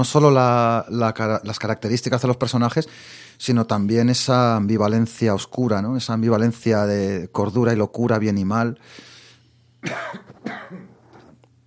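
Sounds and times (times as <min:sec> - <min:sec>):
speech: 0:00.0 - 0:09.1, 0:09.8 - 0:10.8
low steady hum: 0:00.0 - 0:11.6
person coughing from choking slightly: 0:09.8 - 0:11.3.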